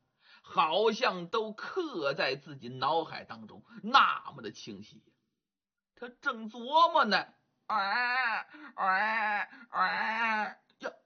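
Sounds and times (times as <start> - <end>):
speech: 0.5 - 5.2, 6.0 - 11.0
newborn baby crying: 7.7 - 10.6
short faint gasp: 8.5 - 8.8, 9.5 - 9.8.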